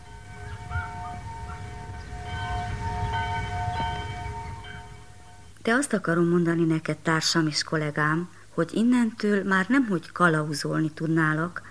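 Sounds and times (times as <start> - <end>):
village church bell ringing at noon in Bözödúj: 0.0 - 5.6
speech: 5.6 - 11.6.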